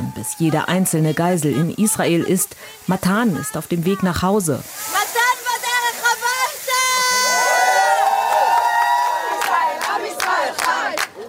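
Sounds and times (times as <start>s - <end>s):
large crowd at a rally cheering with rhythmic bursts of shouting: 0.0s - 1.0s, 4.8s - 11.2s
speech: 0.2s - 5.2s
large crowd at a rally chanting loudly in unison: 9.1s - 11.2s.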